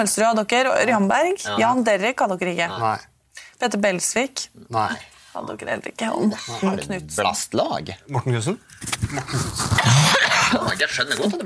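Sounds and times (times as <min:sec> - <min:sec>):
speech: 0:00.0 - 0:11.4
person clearing throat: 0:09.1 - 0:11.4
person coughing roughly: 0:09.8 - 0:11.4.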